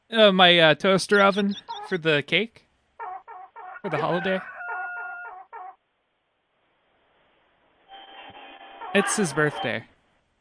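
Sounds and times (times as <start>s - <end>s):
speech: 0.1s - 2.6s, 3.8s - 4.5s, 9.0s - 9.9s
chickens clucking: 1.1s - 2.1s, 3.0s - 5.8s.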